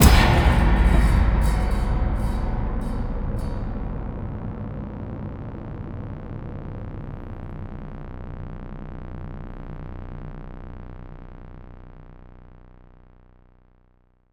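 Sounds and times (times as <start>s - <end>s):
sting drone tone wang: 0.0s - 10.0s.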